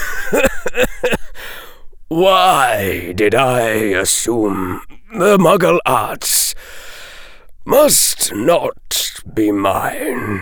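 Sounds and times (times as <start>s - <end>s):
person coughing and laughing: 0.0s - 1.4s
speech: 0.3s - 1.2s, 2.1s - 7.0s, 7.7s - 10.4s.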